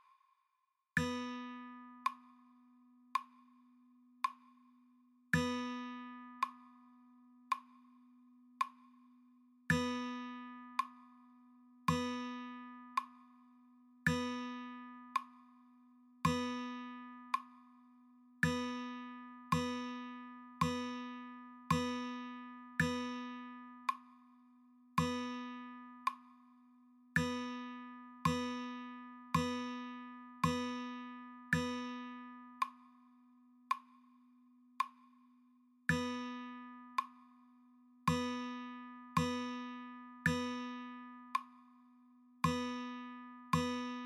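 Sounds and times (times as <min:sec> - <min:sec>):
slow guitar rhythm practice: 0:01.0 - 0:02.4, 0:05.4 - 0:06.7, 0:09.7 - 0:11.0, 0:11.9 - 0:13.2, 0:14.1 - 0:15.3, 0:16.2 - 0:17.4, 0:18.4 - 0:24.1, 0:25.0 - 0:26.3, 0:27.2 - 0:32.8, 0:35.9 - 0:37.1, 0:38.1 - 0:41.5, 0:42.4 - 0:44.0.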